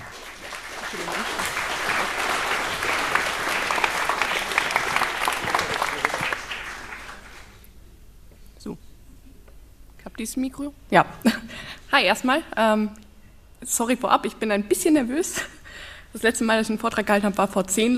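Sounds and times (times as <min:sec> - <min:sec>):
audience applause for a speaker at a lecture event: 0:00.0 - 0:07.6
speech: 0:00.9 - 0:01.6, 0:10.2 - 0:13.0, 0:13.6 - 0:15.5, 0:16.1 - 0:17.9.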